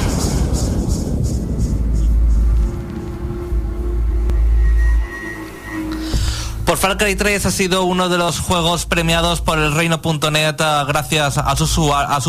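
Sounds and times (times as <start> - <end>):
swelling whooshes in a transition sting: 0.0 - 7.7
faint sustained tones: 0.0 - 9.0
loud deep rumble like a revving engine in a transition sting: 0.0 - 9.8
speech: 6.8 - 12.2.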